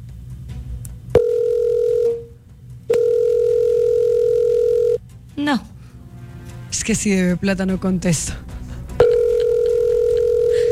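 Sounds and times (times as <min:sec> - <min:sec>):
telephone ringback tones from an unanswered call: 0:01.2 - 0:02.3, 0:02.9 - 0:05.0, 0:09.0 - 0:10.7
speech: 0:05.4 - 0:05.7, 0:06.7 - 0:08.5.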